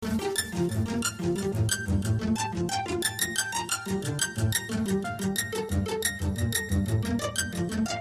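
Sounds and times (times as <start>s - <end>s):
pizzicato strings echoes: 0.0s - 7.9s.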